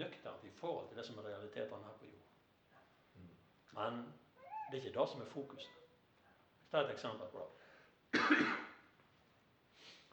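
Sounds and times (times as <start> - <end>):
speech: 0.0 - 2.4, 3.2 - 5.8, 6.7 - 8.7
single harsh cough: 8.1 - 8.9.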